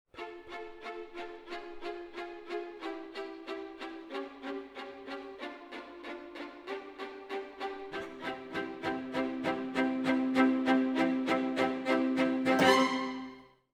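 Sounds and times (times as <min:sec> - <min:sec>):
orchestra playing jazz: 0:07.3 - 0:13.4.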